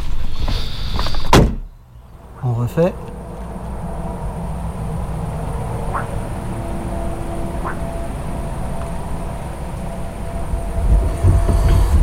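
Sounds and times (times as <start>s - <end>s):
heavy traffic rumble on highway: 0.0s - 12.0s
big truck passing on highway: 1.8s - 12.0s
speech: 2.4s - 3.2s
distant dog barking: 5.8s - 6.3s, 7.5s - 8.0s.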